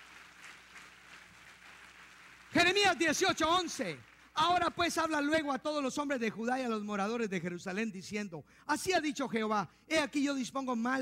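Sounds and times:
audience applauding: 0:00.0 - 0:04.9
speech: 0:02.5 - 0:10.9.

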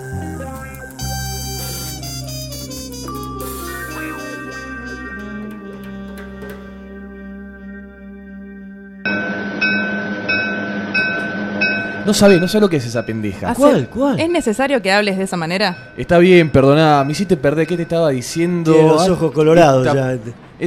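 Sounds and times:
train passing: 0:09.1 - 0:20.6
speech: 0:12.1 - 0:20.6.

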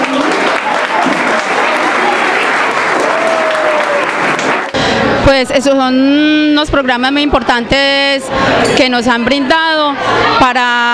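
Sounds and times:
audience applause: 0:00.0 - 0:04.8
speech: 0:05.3 - 0:10.9.

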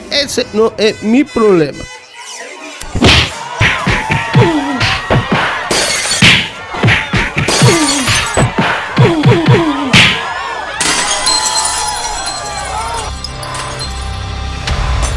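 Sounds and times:
speech: 0:00.2 - 0:01.9
strained voices grunting: 0:02.1 - 0:13.6
scuffle of thuds and blows: 0:02.9 - 0:10.3
breaking glass: 0:05.6 - 0:06.5, 0:10.8 - 0:14.1.

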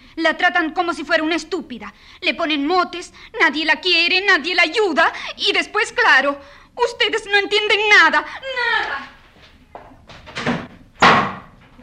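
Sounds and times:
speech: 0:00.2 - 0:09.1
door slamming shut with a loud sharp bang: 0:10.1 - 0:11.7.

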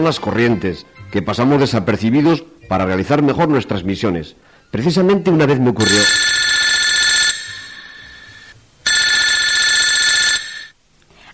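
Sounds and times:
speech: 0:00.0 - 0:06.4
shoe phone ringing with electronic bell trills: 0:05.8 - 0:10.8.

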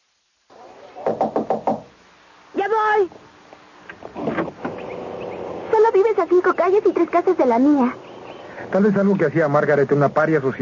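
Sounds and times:
low hiss: 0:00.0 - 0:10.5
knocking on the door of a house: 0:01.0 - 0:01.9
speech: 0:06.4 - 0:08.0, 0:08.6 - 0:10.5.

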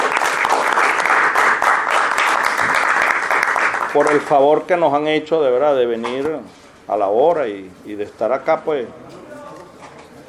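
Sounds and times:
crowd applause for journalists at a press statement: 0:00.0 - 0:04.4
speech: 0:04.0 - 0:09.1.

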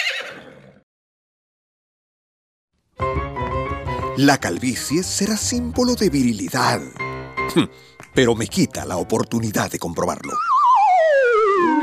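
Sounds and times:
horse whinnying: 0:00.0 - 0:00.8
speech: 0:04.2 - 0:11.7.

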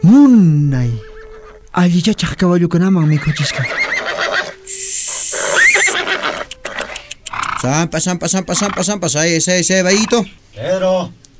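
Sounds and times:
speech: 0:00.1 - 0:01.1, 0:01.8 - 0:04.3, 0:07.6 - 0:11.2
horse whinnying: 0:00.9 - 0:01.6, 0:03.0 - 0:09.0, 0:09.8 - 0:10.4
horse snorting: 0:03.5 - 0:10.4.

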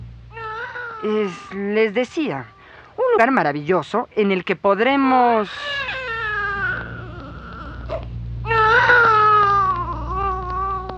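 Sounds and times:
baby crying in long wavering wails: 0:00.3 - 0:02.8, 0:05.4 - 0:10.9
speech: 0:01.0 - 0:05.8.

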